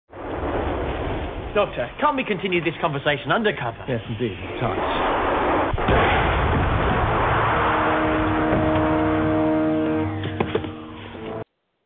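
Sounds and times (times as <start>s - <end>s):
artillery bombardment explosions: 0.1s - 2.4s, 4.2s - 11.4s
speech: 1.5s - 5.1s
droning tonal hum: 7.6s - 11.5s.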